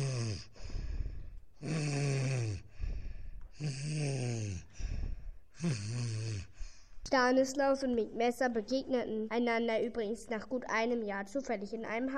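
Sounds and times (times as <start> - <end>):
loud snoring by a ship's captain in his cabin: 0.0 - 6.8
speech: 7.1 - 12.1.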